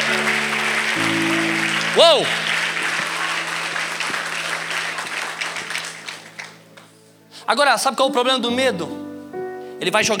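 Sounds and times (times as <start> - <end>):
large crowd applauding: 0.0 - 7.0
speech: 2.0 - 2.5, 7.5 - 9.0, 9.8 - 10.1.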